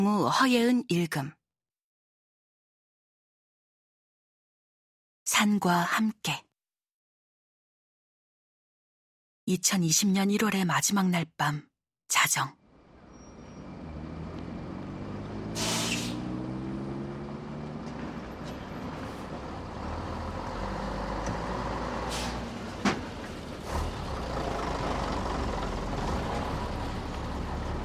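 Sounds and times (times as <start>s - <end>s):
speech: 0.0s - 1.4s, 5.3s - 6.4s, 9.5s - 12.6s
late-night bus engine rumbling at a bus terminal: 12.6s - 27.8s
softer releases of air: 15.5s - 16.3s, 22.1s - 22.5s
sharp hiss of bus air brakes: 15.5s - 16.4s, 22.0s - 22.7s
clunks: 22.8s - 24.0s.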